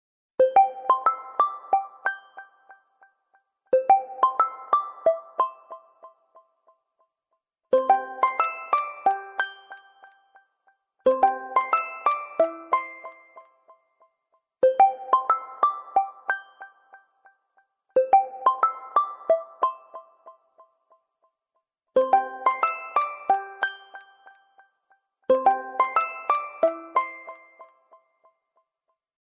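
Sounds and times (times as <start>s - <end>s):
phone ringtone background music: 0.4s - 3.0s, 3.7s - 6.5s, 7.7s - 10.5s, 11.1s - 13.8s, 14.7s - 17.2s, 18.0s - 20.5s, 22.0s - 24.5s, 25.3s - 28.1s.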